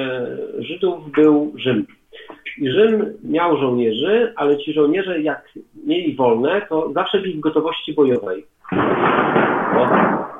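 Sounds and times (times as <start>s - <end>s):
speech: 0.0s - 2.0s, 2.6s - 10.3s
loud thunder clap from a storm with deep rumble: 8.7s - 10.3s.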